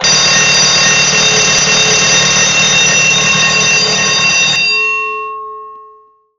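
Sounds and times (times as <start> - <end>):
bell ringing: 0.0 - 6.3.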